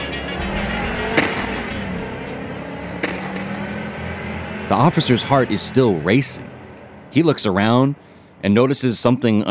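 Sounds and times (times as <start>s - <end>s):
car engine roaring: 0.0s - 9.4s
sharp pops: 3.0s - 3.8s
speech: 4.7s - 6.5s, 7.1s - 9.4s.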